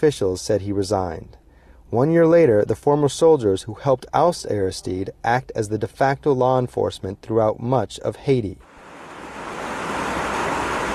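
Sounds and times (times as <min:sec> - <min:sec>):
speech: 0:00.0 - 0:08.7
rain on a rusted sheet metal roof of a cinder block home in Haiti: 0:08.7 - 0:10.9.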